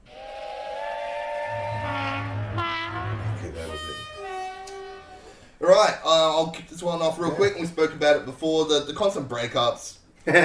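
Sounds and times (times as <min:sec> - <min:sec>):
steam train whistle: 0:00.0 - 0:05.5
speech: 0:05.7 - 0:10.4.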